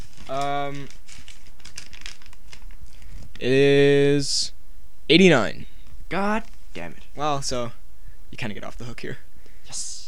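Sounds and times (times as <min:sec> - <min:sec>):
paper being picked up and rustled: 0:00.0 - 0:03.4
speech: 0:00.3 - 0:01.0, 0:03.4 - 0:10.0.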